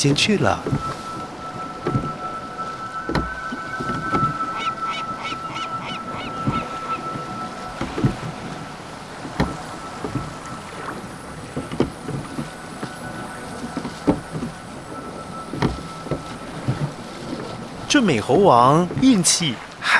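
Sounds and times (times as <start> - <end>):
speech: 0.0 - 1.1, 18.0 - 19.9
oars or paddles splashing while rowing a raft across the sea: 0.0 - 19.9
steady wash of sea waves and spray: 0.0 - 19.9
faint bird calls: 0.6 - 14.0.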